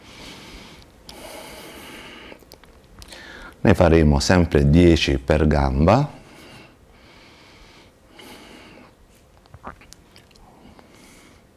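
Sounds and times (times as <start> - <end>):
person breathing during a leg exercise routine: 0.0 - 2.4, 3.1 - 3.6, 6.2 - 9.0, 10.4 - 11.5
speech: 3.6 - 6.2.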